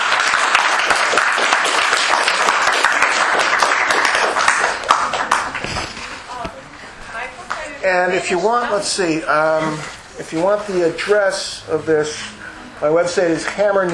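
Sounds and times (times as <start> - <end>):
crowd applause after a lecture: 0.0 - 6.3
speech: 7.9 - 13.9.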